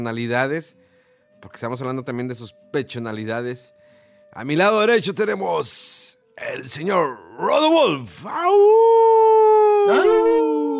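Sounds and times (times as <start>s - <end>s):
speech: 0.0s - 0.8s, 1.4s - 10.5s
long howl: 8.3s - 10.7s.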